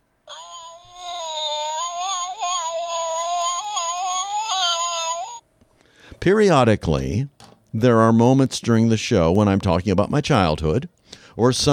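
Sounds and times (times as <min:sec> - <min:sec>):
cat fight yowling wail: 0:00.3 - 0:05.4
speech: 0:06.2 - 0:11.7.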